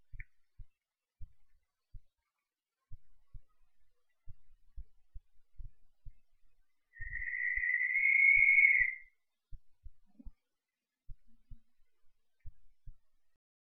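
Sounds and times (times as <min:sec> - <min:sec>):
faint irregular low knocks and clicks: 0:00.0 - 0:07.2, 0:09.4 - 0:13.4
Cape Verde barn owl rasping hissy scream: 0:07.0 - 0:09.0.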